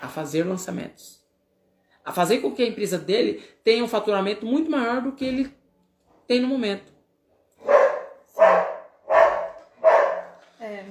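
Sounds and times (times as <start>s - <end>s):
speech: 0.1s - 1.2s, 2.0s - 5.6s, 6.3s - 6.9s
small dog barking: 7.6s - 10.3s.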